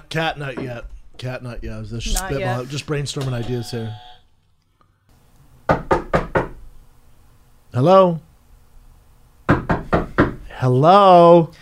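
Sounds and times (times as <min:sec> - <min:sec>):
speech: 0:00.1 - 0:04.1, 0:07.7 - 0:08.3, 0:10.6 - 0:11.5
firm knocking on a door: 0:05.7 - 0:06.6, 0:09.5 - 0:10.4.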